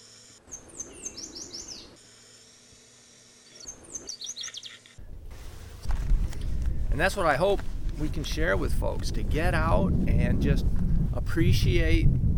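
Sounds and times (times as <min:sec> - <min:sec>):
yellow warbler singing from a blossoming shrub beside a farmhouse: 0:00.5 - 0:02.0, 0:03.5 - 0:04.9
speech: 0:07.0 - 0:12.2.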